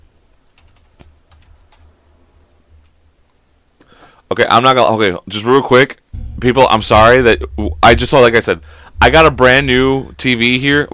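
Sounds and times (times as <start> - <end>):
computer keyboard keystrokes typing a search: 0.5 - 1.9
speech: 4.3 - 10.9
steady low hum: 6.1 - 10.9.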